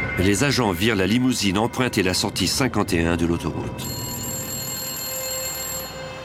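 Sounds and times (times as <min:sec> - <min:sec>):
speech: 0:00.2 - 0:04.1
telephone ringing with electronic tone: 0:03.8 - 0:06.2.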